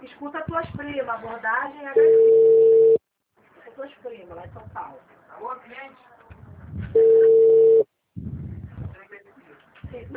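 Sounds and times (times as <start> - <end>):
speech: 0.2 - 2.7, 3.8 - 7.3, 10.0 - 10.1
telephone tone after a dropped call: 2.0 - 3.0, 7.0 - 7.9.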